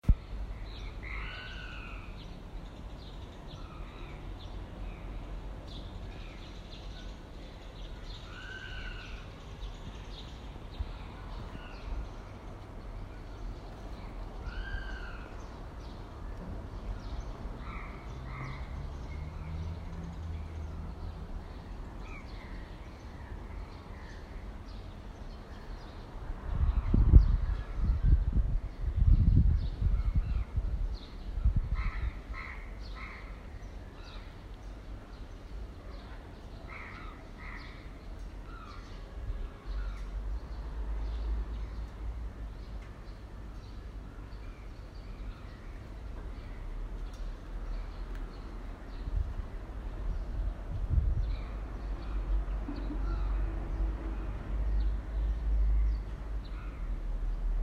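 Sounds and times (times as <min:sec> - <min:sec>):
birds on a street: 0:00.0 - 0:57.5.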